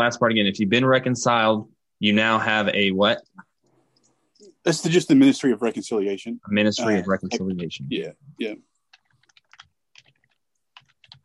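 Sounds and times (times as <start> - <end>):
speech: 0.0 - 3.4, 4.6 - 8.7
typing on a computer keyboard: 8.9 - 11.2.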